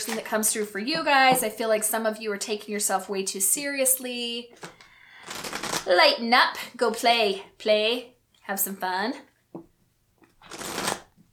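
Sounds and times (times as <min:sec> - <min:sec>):
speech: 0:00.0 - 0:04.8, 0:05.8 - 0:09.7
tarot cards being shuffled and drawn: 0:04.5 - 0:05.9, 0:10.2 - 0:11.1.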